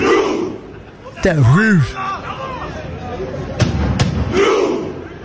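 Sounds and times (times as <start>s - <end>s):
big stadium crowd doing a slow rhythmic chant: 0.0s - 2.0s
steady stadium crowd roar: 0.0s - 2.2s, 4.2s - 5.0s
collective crowd shout: 0.0s - 2.7s, 4.3s - 5.1s
speech: 1.2s - 2.1s.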